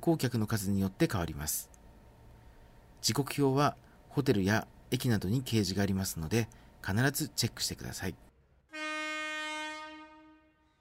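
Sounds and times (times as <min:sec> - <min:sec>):
speech: 0:00.0 - 0:01.8, 0:03.0 - 0:08.3
Alishan Forest Railway train horn blast arriving and passing: 0:08.7 - 0:10.8.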